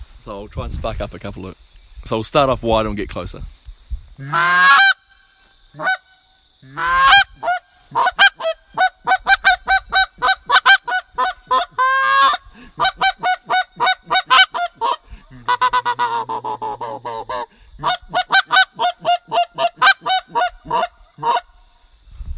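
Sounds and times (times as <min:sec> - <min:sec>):
speech: 0:00.2 - 0:03.6, 0:04.2 - 0:04.8, 0:05.8 - 0:06.0, 0:06.6 - 0:08.0
aggressive duck calling with clucks used to finish the birds: 0:04.2 - 0:05.2, 0:05.8 - 0:21.5.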